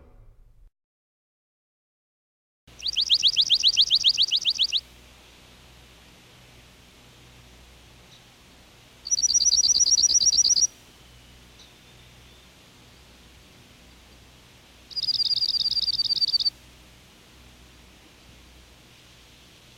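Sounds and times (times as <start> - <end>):
slate-colored junco: 2.7 - 4.9, 9.0 - 12.5, 14.9 - 16.5.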